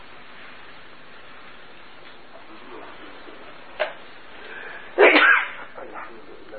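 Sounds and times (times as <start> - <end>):
person sneezing: 4.9 - 5.7.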